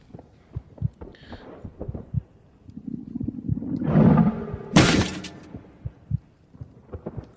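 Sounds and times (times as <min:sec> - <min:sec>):
video game electronic heartbeat thumping: 0:00.5 - 0:02.4, 0:04.4 - 0:04.8, 0:05.5 - 0:07.3
rising whoosh game sound effect: 0:02.8 - 0:04.8.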